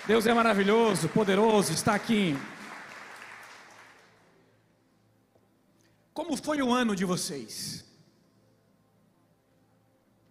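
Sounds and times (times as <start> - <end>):
speech: 0.0 - 2.6, 6.4 - 7.9
audience applauding: 0.0 - 4.4.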